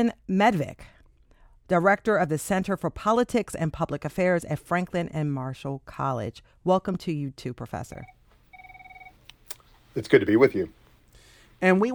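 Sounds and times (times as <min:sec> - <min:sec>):
speech: 0:00.0 - 0:01.0, 0:01.7 - 0:08.2, 0:10.0 - 0:10.8, 0:11.6 - 0:11.9
telephone with warbling electronic trill ringing in the background: 0:07.9 - 0:09.2.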